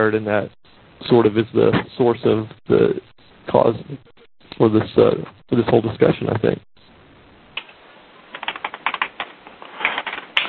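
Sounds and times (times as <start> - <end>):
speech: 0.0 - 6.7
rapid typing on a computer keyboard: 8.4 - 9.3.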